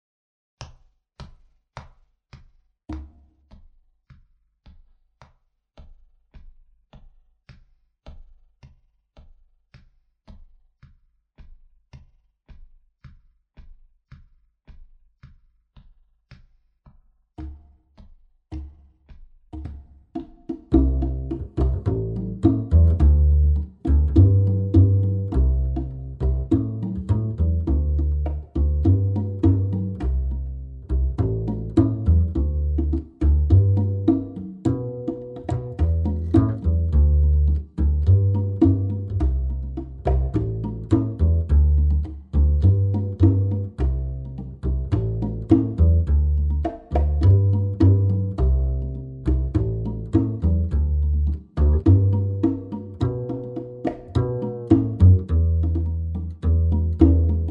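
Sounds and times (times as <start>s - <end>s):
instrumental backing track without piano: 20.7s - 57.4s.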